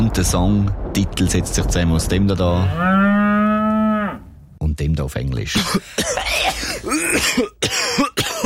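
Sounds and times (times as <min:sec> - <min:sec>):
speech: 0:00.1 - 0:03.2, 0:04.8 - 0:08.1
harsh coughing with throaty voiced rasps: 0:05.5 - 0:08.4.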